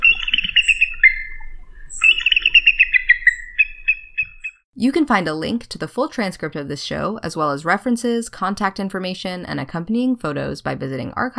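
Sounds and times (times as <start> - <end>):
pileated woodpecker call: 0.0 - 4.6
speech: 4.8 - 11.3.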